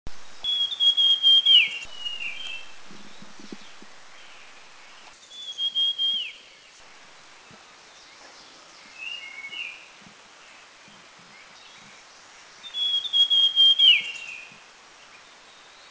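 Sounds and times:
sibia bird in Dirang India: 0.4s - 6.6s, 12.6s - 14.6s.

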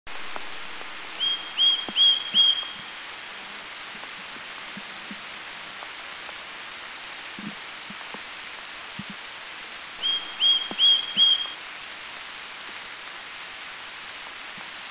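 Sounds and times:
Green-backed Tit calling: 1.2s - 2.9s, 10.0s - 11.6s.

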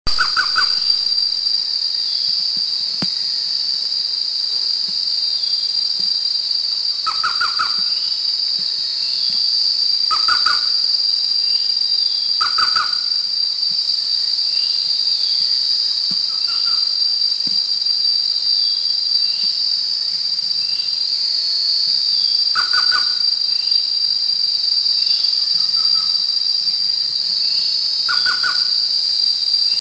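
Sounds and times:
Orange-breasted Trogon calling: 0.1s - 0.9s, 7.0s - 7.9s, 10.1s - 10.7s, 12.4s - 13.1s, 22.6s - 23.2s, 28.0s - 28.7s.

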